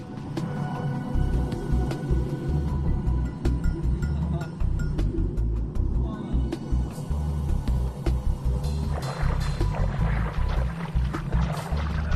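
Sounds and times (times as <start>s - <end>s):
steady low mechanical rumble of a surfacing submarine: 1.0s - 12.1s
churning bubbling water: 8.7s - 12.1s.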